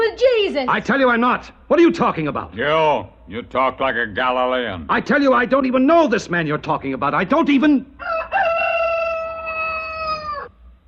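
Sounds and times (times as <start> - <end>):
speech: 0.5 - 8.5
rooster crowing: 8.0 - 10.6.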